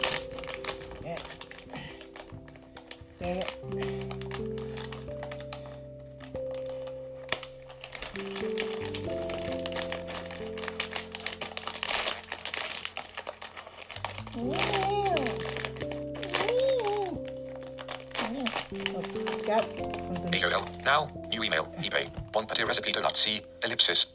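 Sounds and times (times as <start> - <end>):
plastic wrapper crinkling as a package is opened by hand: 0.0 - 24.1
speech: 3.3 - 3.9, 20.9 - 24.1.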